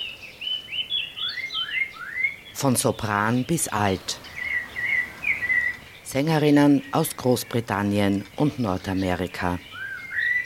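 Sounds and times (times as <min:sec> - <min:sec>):
chorus of birds singing with warbling whistles and chirps: 0:00.0 - 0:10.4
speech: 0:02.6 - 0:04.2, 0:06.1 - 0:09.7.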